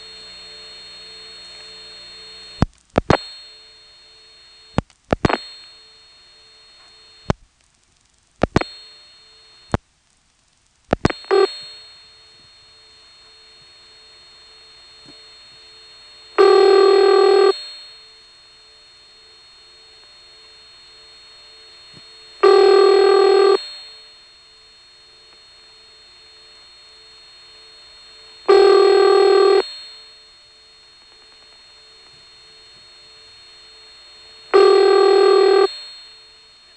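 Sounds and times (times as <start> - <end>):
telephone line tone through a trunk and tandem office: 0.0 - 7.3, 11.1 - 36.7
telephone ringback bursts: 11.1 - 12.6, 16.3 - 18.0, 22.3 - 24.1, 28.4 - 30.4, 34.4 - 36.7.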